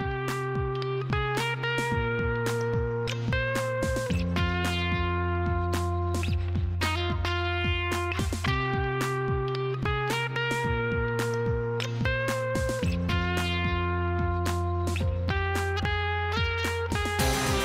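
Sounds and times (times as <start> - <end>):
effects-laden electric guitar solo: 0.0 - 17.6
sustained bass notes: 0.0 - 17.6
steady drum beat: 17.0 - 17.6.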